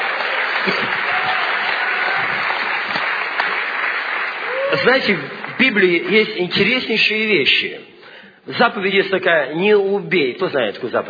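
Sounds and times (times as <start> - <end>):
large crowd applauding: 0.0 - 6.4
speech: 0.6 - 1.0, 4.8 - 7.9, 8.5 - 11.0.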